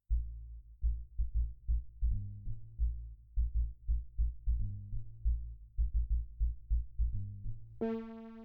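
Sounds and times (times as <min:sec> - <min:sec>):
bass strings: 0:00.1 - 0:07.9.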